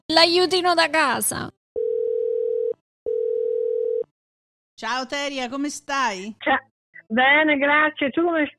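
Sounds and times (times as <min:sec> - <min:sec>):
speech: 0:00.2 - 0:01.6, 0:04.8 - 0:08.5
telephone line tone beeps while placing a call: 0:01.8 - 0:04.1.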